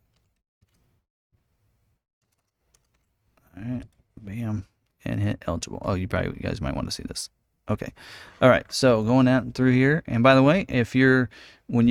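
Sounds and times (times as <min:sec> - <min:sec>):
keyboard typing a zip code: 0:00.0 - 0:00.9, 0:02.2 - 0:03.1
speech: 0:05.5 - 0:11.8.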